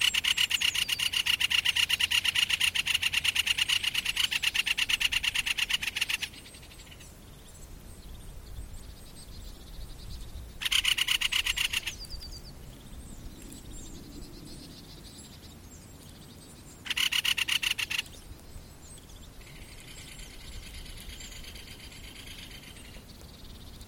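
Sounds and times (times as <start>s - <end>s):
great spotted woodpecker harsh clicking rattle call: 0.0s - 7.1s, 10.6s - 12.4s, 16.8s - 18.4s, 19.0s - 23.7s.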